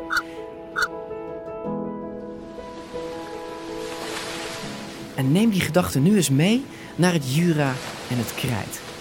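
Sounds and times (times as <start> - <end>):
short bird calls: 0.0 - 0.9
foaming surf washing in on a rocky coast: 2.7 - 8.9
speech: 5.2 - 8.9.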